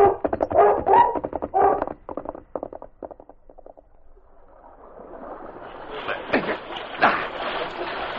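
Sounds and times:
dog barking on a shore: 0.0s - 1.8s
rhythmic thumping steps: 0.0s - 3.2s
rush of splashing water: 0.0s - 8.1s.

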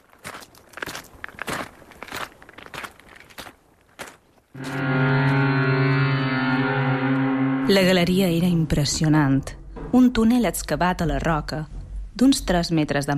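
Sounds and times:
crunchy footsteps on gritty ground at a steady walk: 0.0s - 5.4s
speech: 4.6s - 5.0s, 7.7s - 13.1s
loud sustained harmonic drone: 4.6s - 9.0s.

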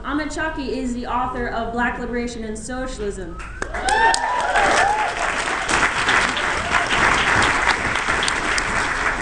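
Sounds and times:
speech: 0.1s - 4.7s
whoops and cheers: 3.5s - 5.6s
audience applause: 3.6s - 9.2s.

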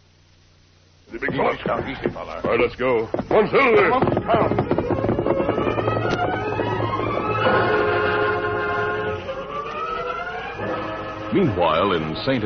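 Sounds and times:
speech: 1.1s - 6.0s, 11.3s - 12.4s
freight train whistle: 6.0s - 12.0s.

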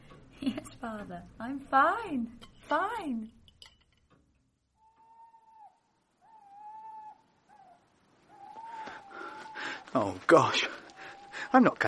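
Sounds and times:
speech: 0.4s - 3.4s, 9.9s - 10.8s, 11.5s - 11.8s
owl hooting at night: 4.8s - 11.8s.

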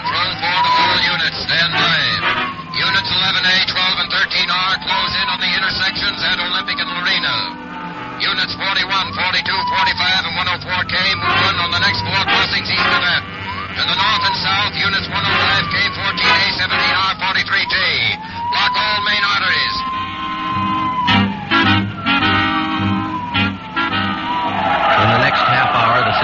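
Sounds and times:
car tyres squealing: 0.0s - 26.2s
speeding car engine roaring in a chase: 0.0s - 26.2s.

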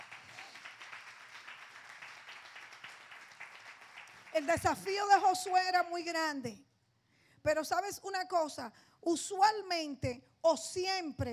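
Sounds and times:
religious gathering applauding: 0.0s - 5.9s
speech: 4.4s - 6.7s, 7.4s - 11.3s.

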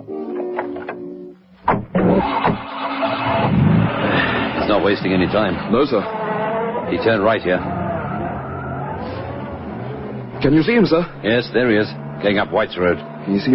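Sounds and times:
mechanical clunks of police car engine cranking: 0.4s - 2.8s
police car engine starting and driving off: 1.7s - 13.5s
speech: 4.8s - 6.2s, 6.9s - 7.8s, 10.4s - 13.5s.

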